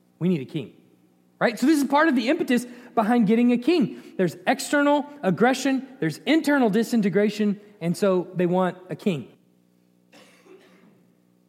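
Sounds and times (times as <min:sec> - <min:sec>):
speech: 0:00.2 - 0:00.8, 0:01.4 - 0:09.3
person coughing: 0:10.1 - 0:11.1.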